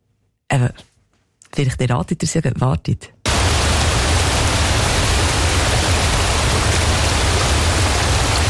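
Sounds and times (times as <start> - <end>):
speech: 0.6 - 0.9, 1.6 - 3.2
rushing waterfall: 3.3 - 8.4.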